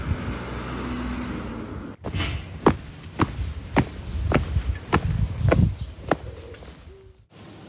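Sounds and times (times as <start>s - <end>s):
passing traffic rumble on Ishikawa Prefectural Road 106: 0.0s - 6.2s
footsteps crunching outdoors at walking pace in Nonoichi Ishikawa Japan: 2.0s - 6.9s.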